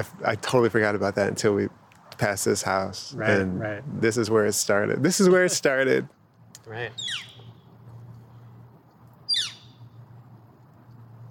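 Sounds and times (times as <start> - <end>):
speech: 0.0 - 7.3
descending bird call: 6.8 - 7.7, 9.2 - 9.9.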